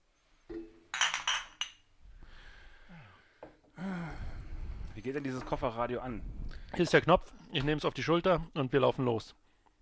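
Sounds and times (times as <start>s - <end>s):
glasses clinking in a toast: 0.5s - 1.8s
speech: 5.0s - 9.4s.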